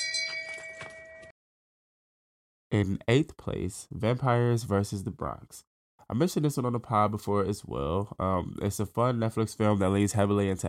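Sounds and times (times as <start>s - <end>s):
shame bell clanging over a sustained metallic tone: 0.0s - 1.3s
speech: 2.7s - 10.6s.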